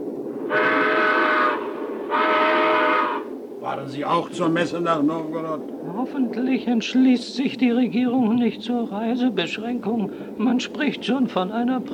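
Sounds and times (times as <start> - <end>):
train from Moscow to Nizhny Novgorod rumbling: 0.0 - 11.9
loud train whistle: 0.5 - 3.3
speech: 3.8 - 11.9.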